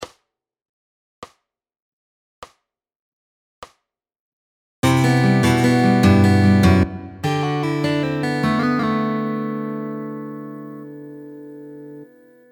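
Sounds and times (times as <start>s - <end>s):
fingerpicked guitar lick: 4.8s - 12.5s.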